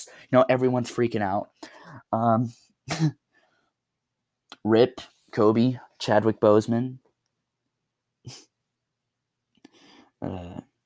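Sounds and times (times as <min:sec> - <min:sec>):
speech: 0:00.0 - 0:03.2, 0:04.6 - 0:07.0, 0:08.2 - 0:08.5, 0:10.2 - 0:10.7
man coughing to clear his throat: 0:02.9 - 0:03.2.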